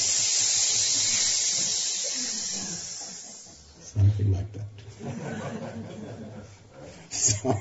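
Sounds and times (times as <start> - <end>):
crowd of people imitating snakes hissing: 0.0 - 3.8
laughter: 1.6 - 7.5
speech: 4.0 - 7.5.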